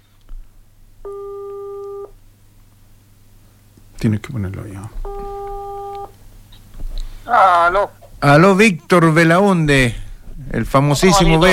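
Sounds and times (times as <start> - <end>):
faint hiss: 0.0 - 11.5
telephone tone on an outgoing call: 1.1 - 2.1, 5.0 - 6.2
speech: 4.0 - 5.1, 7.3 - 11.5.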